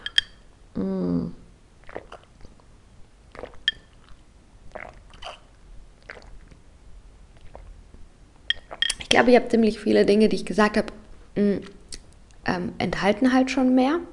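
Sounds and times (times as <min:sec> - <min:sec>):
person sipping tea: 0:01.8 - 0:02.7, 0:03.3 - 0:06.6, 0:07.3 - 0:07.8, 0:08.5 - 0:09.0
wet mouth slurps, smacks and swallows from sipping tea: 0:01.8 - 0:02.7, 0:03.3 - 0:06.6, 0:07.3 - 0:07.8, 0:08.5 - 0:09.1
speech: 0:09.2 - 0:11.8, 0:12.5 - 0:14.1.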